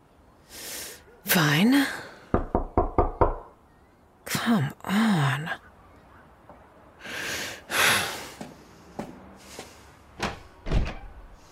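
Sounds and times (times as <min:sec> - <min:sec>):
speech: 0:01.3 - 0:02.1, 0:04.5 - 0:05.6
firm knocking on a wooden door: 0:02.3 - 0:03.5.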